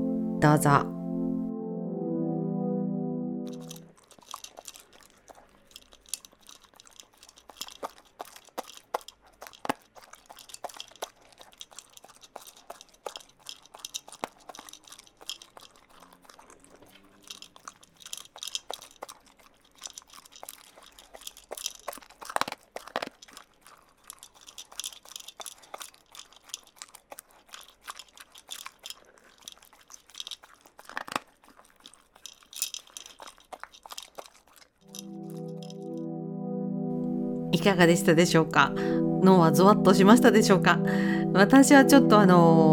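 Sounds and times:
brief tonal hum: 0.0 - 3.9, 34.9 - 42.7
speech: 0.4 - 0.9, 37.7 - 42.7
dog crunching and eating dry dog food kibble: 3.6 - 35.8.

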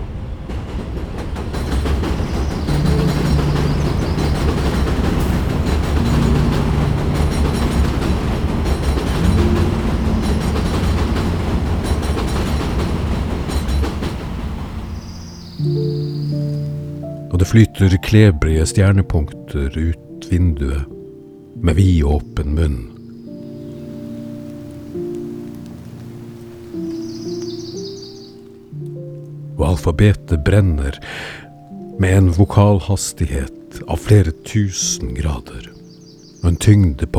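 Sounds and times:
train rumbling along the tracks: 0.0 - 18.7, 23.6 - 28.3
speech: 17.5 - 21.0, 21.6 - 22.9, 29.6 - 31.4, 32.0 - 35.7, 36.4 - 37.1.

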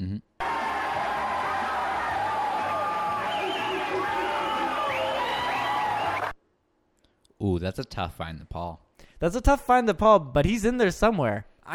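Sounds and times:
packed bar crowd cheering, yelling and whooping: 0.4 - 6.4
bar crowd whistling: 2.6 - 6.4
speech: 7.6 - 11.7.

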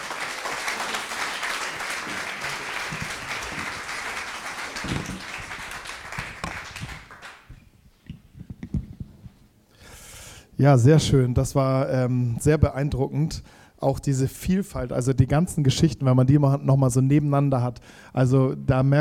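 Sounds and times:
audience applause: 0.0 - 7.5
speech: 10.6 - 19.0.

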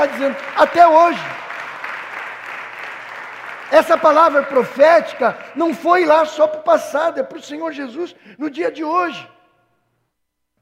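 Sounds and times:
speech: 0.0 - 1.4, 3.7 - 9.4
crowd applauding: 0.0 - 6.6.

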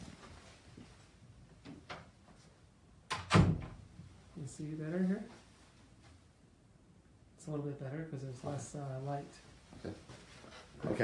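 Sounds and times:
faint room hum: 0.0 - 11.0
door pushed shut with latch click and thud: 3.1 - 3.8
speech: 4.4 - 5.4, 7.4 - 10.2, 10.8 - 11.0.

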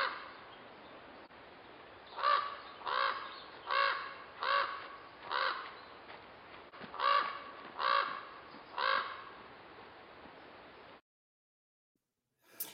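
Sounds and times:
raven giving loud low croaking calls: 2.2 - 5.8, 6.9 - 9.4.

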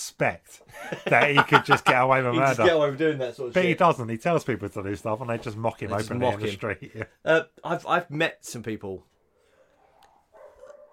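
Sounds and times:
speech: 0.0 - 9.1
laughter: 0.7 - 2.8, 6.4 - 7.2
dogs barking outdoors: 9.4 - 10.9.

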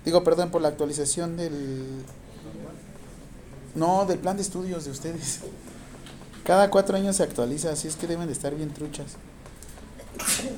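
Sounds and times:
quiet room noise: 0.0 - 10.5
speech: 0.1 - 2.2, 3.7 - 5.7, 6.4 - 9.3, 10.2 - 10.5
person sneezing: 10.0 - 10.5.

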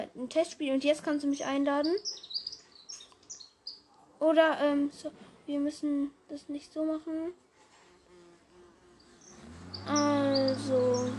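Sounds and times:
speech: 0.2 - 2.4, 4.2 - 7.4, 9.9 - 11.1
neighbours' lawn mower droning: 8.7 - 11.1.

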